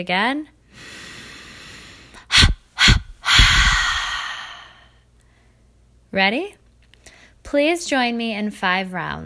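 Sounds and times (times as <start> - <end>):
speech: 0.0 - 1.0, 6.1 - 6.6, 7.4 - 9.2
sharp inhales and forceful exhales in a breathing exercise: 0.7 - 5.6.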